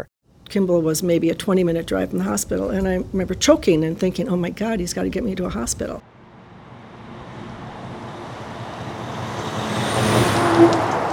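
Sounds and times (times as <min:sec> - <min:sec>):
speech: 0:00.0 - 0:06.1
heavy logging trucks rumbling along a road: 0:04.6 - 0:11.1.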